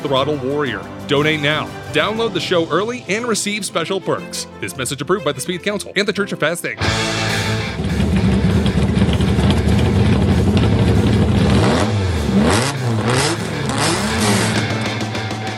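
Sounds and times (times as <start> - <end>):
speech: 0.0 - 7.8
TVR Cerbera sports car engine revving: 6.9 - 15.5.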